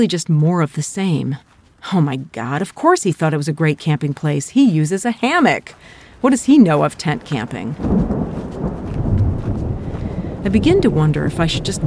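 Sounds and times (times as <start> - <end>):
speech: 0.0 - 8.8, 10.4 - 11.8
thunder rumbling: 6.7 - 11.8.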